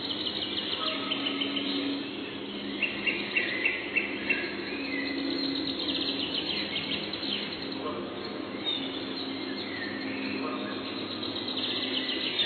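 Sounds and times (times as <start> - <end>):
red-breasted flycatcher song: 0.0 - 12.4.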